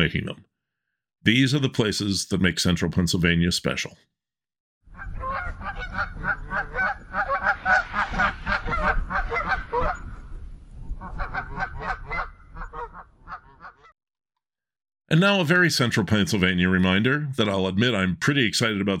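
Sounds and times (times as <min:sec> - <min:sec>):
speech: 0:00.0 - 0:00.5, 0:01.2 - 0:04.2, 0:05.0 - 0:09.1, 0:15.1 - 0:18.9
flock of geese honking: 0:04.9 - 0:10.1, 0:11.0 - 0:13.9.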